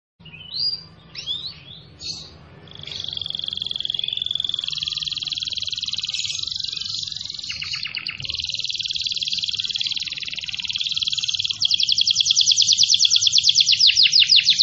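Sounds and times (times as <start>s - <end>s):
domestic canary singing energetically: 0.2s - 14.6s.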